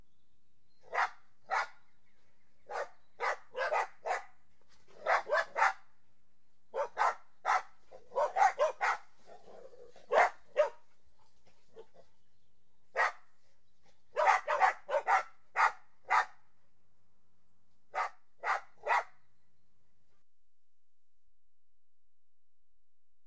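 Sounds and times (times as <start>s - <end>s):
dog barking: 0.8s - 1.8s, 2.7s - 5.9s, 6.7s - 10.9s, 12.9s - 13.2s, 14.1s - 16.4s, 17.9s - 19.2s.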